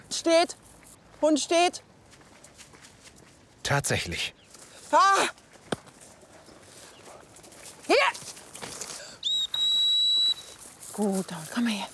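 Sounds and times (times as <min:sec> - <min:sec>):
faint noise: 0:00.0 - 0:11.9
speech: 0:00.2 - 0:01.9, 0:03.7 - 0:05.4, 0:07.9 - 0:08.3, 0:11.0 - 0:11.9
high whistle calling back a hunting dog: 0:09.2 - 0:10.6.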